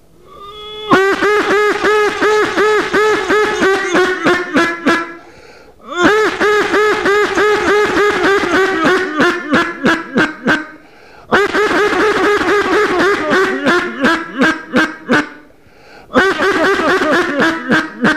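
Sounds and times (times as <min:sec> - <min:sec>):
duck call giving nasal quacks to lure a passing duck: 0:00.3 - 0:15.5, 0:16.1 - 0:18.1
laughter: 0:00.9 - 0:05.2, 0:06.0 - 0:15.4, 0:16.1 - 0:18.1
breaths: 0:05.2 - 0:06.0, 0:10.8 - 0:11.3, 0:15.5 - 0:16.2.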